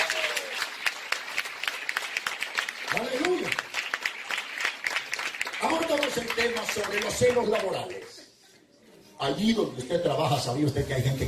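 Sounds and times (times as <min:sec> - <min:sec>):
audience applause: 0:00.0 - 0:08.2
speech: 0:06.1 - 0:08.2, 0:09.2 - 0:11.2.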